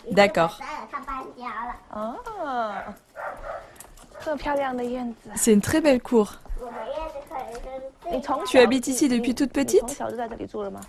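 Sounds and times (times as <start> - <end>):
speech: 0.0 - 0.7, 1.4 - 3.0, 4.2 - 6.4, 8.1 - 10.8
puppy barking: 2.8 - 4.4
puppy whining bark: 3.2 - 4.3.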